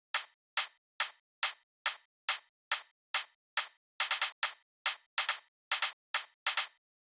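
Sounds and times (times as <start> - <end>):
multi drum loop with hi-hat at 140 BPM: 0.0 - 7.0.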